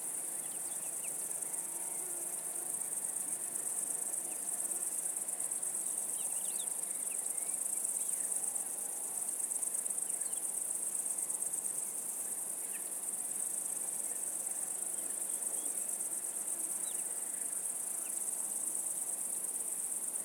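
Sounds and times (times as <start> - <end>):
insects: 0.0 - 20.2.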